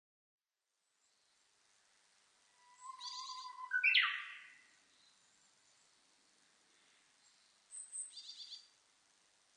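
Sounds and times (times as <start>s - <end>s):
Japanese bush warbler singing: 2.6s - 8.8s.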